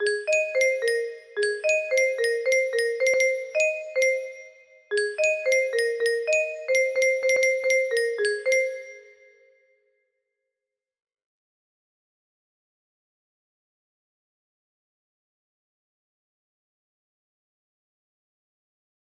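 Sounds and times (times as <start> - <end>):
chime music box melody: 0.0 - 9.4.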